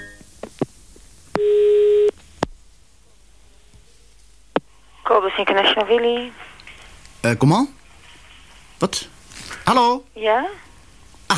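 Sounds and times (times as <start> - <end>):
telephone call tone: 1.4 - 2.1
speech: 5.2 - 6.4, 7.2 - 7.8, 8.8 - 9.1, 9.7 - 10.6.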